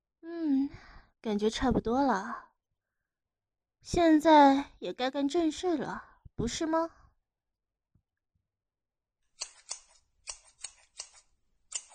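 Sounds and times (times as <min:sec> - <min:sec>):
speech: 0:01.2 - 0:02.5, 0:03.8 - 0:07.0
scissors snipping: 0:09.4 - 0:11.9.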